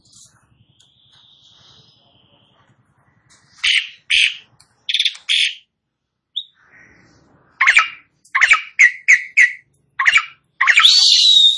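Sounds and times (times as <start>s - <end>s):
Asian pied starling giving harsh scratchy calls: 3.6s - 5.7s, 6.4s - 11.5s.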